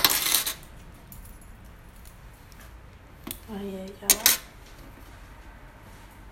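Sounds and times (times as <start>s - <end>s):
metallic jangle of keys: 0.1s - 2.7s
faint small clinks: 0.1s - 2.8s
speech: 3.5s - 4.5s.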